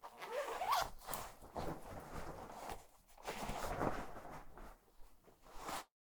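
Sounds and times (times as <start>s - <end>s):
person taking off a jacket: 0.1s - 4.5s.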